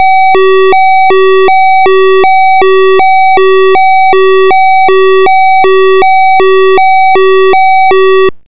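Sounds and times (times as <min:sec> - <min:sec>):
ambulance siren: 0:00.0 - 0:08.3.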